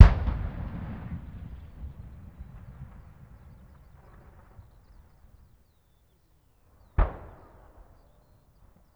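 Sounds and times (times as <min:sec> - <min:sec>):
distant anti-aircraft gun firing short bursts: 0:00.0 - 0:05.5, 0:06.8 - 0:08.4.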